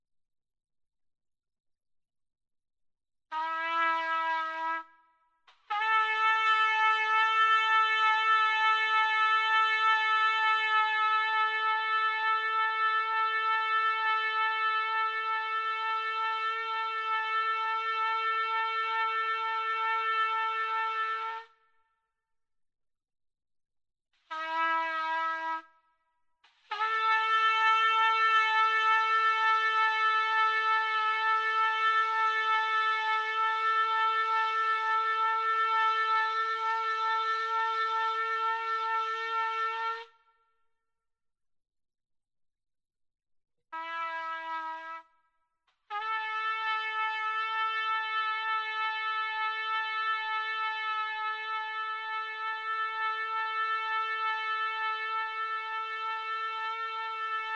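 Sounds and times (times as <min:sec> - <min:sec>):
trumpet loop: 0:03.3 - 0:04.9, 0:05.5 - 0:21.6, 0:24.3 - 0:25.7, 0:26.7 - 0:40.2, 0:43.8 - 0:45.1, 0:45.9 - 0:57.5.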